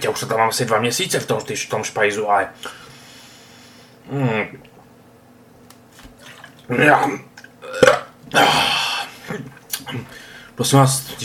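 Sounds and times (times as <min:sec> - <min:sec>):
speech: 0:00.2 - 0:02.9, 0:04.1 - 0:04.7, 0:06.7 - 0:07.3, 0:08.3 - 0:08.7, 0:09.3 - 0:11.2
person gagging after drinking sauerkraut juice: 0:06.7 - 0:10.0.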